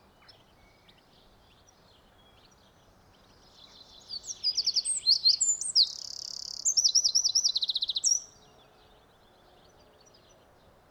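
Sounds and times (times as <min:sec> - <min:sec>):
Eurasian wren Troglodytes troglodytes singing: 0:03.9 - 0:08.4.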